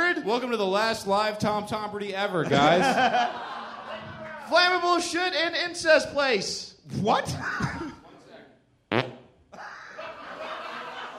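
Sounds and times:
speech: 0.2s - 3.6s, 4.5s - 7.7s
people laughing: 2.4s - 4.4s, 9.6s - 11.1s
fart into a microphone held up to the face: 8.9s - 9.4s.

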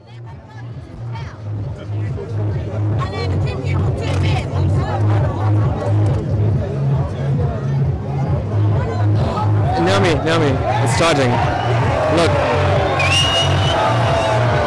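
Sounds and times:
dense crowd chatter of hundreds gathered at night around a street bonfire: 0.0s - 14.6s
speech: 10.2s - 12.5s
large crowd cheering as a bonfire is set alight: 10.5s - 14.6s
whoops and high whistles from a crowd: 12.9s - 14.5s.

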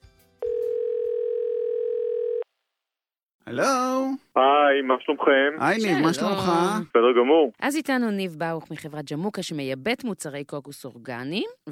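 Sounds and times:
phone call ringing tone: 0.4s - 2.5s
speech: 3.5s - 4.2s, 4.8s - 11.7s.

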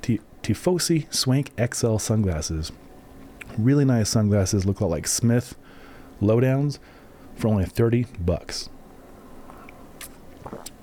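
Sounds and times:
speech: 0.1s - 2.9s, 3.5s - 5.6s, 6.2s - 8.8s
sipping water: 9.4s - 10.8s
swallow: 9.5s - 10.8s.

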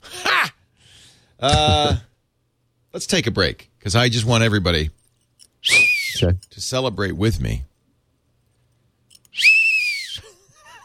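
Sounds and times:
speech: 1.4s - 2.1s, 3.0s - 5.0s, 5.6s - 7.7s
shrill whistle blast: 5.6s - 6.3s, 9.3s - 10.2s.

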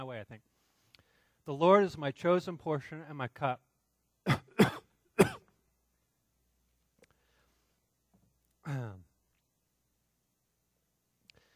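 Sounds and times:
speech: 0.2s - 0.6s, 1.5s - 4.4s
person coughing: 4.3s - 5.5s, 8.6s - 9.1s
throat clearing: 8.6s - 9.1s.

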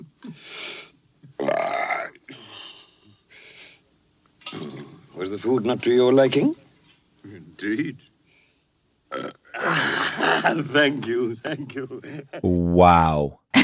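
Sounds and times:
person burping in a film scene: 1.4s - 2.2s, 4.4s - 5.0s, 9.1s - 10.6s
speech: 5.2s - 6.6s, 7.6s - 8.1s, 10.4s - 13.4s.

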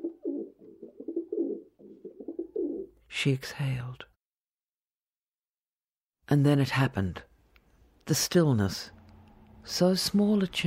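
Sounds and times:
pigeons cooing: 0.0s - 2.9s
speech: 3.1s - 4.1s, 6.3s - 7.3s, 8.1s - 9.0s, 9.6s - 10.6s.

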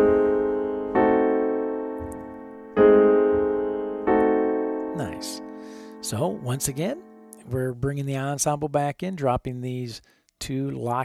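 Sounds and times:
piano playing C diminished chord voicings: 0.0s - 7.7s
speech: 6.1s - 11.0s.

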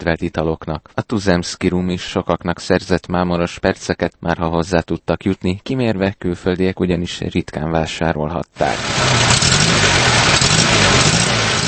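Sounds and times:
speech: 0.0s - 9.3s
car engine idling with faint revving: 8.6s - 11.6s.

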